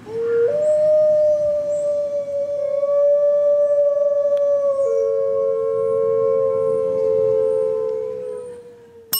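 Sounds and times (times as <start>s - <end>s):
gray wolf howling: 0.0s - 9.1s.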